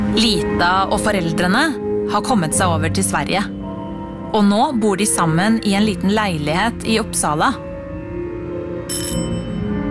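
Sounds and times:
speech: 0.1 - 3.5, 4.3 - 7.7
electric doorbell ringing at a small apartment on a spring day: 8.9 - 9.7.

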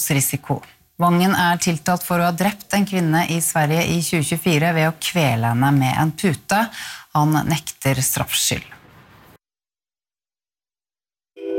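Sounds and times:
speech: 0.0 - 8.8
burst of noise: 8.7 - 9.4.

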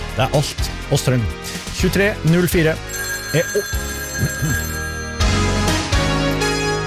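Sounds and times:
speech: 0.2 - 4.8
telephone bell ringing in a studio: 2.9 - 6.7.

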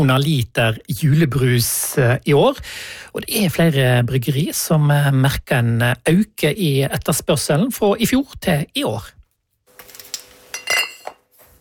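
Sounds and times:
speech: 0.0 - 9.2
glass bottles clinking at a brewery: 10.5 - 11.2.

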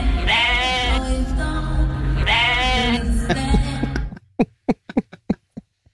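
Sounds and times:
sheep bleating: 0.2 - 1.1, 2.1 - 3.1
laughter: 2.9 - 5.7.

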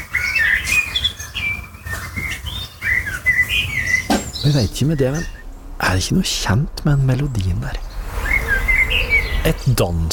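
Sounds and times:
blackbird singing on a house roof: 0.0 - 6.0, 6.8 - 9.8
low rumble: 3.7 - 10.1
speech: 4.4 - 7.9, 9.4 - 10.1.

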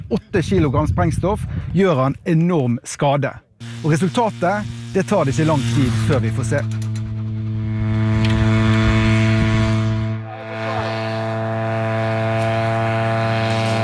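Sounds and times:
speech: 0.1 - 6.8
small medium-range drone propeller engine buzzing during catapult launch: 3.6 - 13.8.

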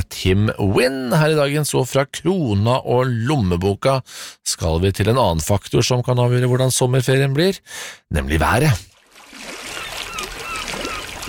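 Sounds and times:
speech: 0.2 - 8.9
seaside waves lapping: 9.0 - 11.2
gull cries: 9.7 - 11.2.

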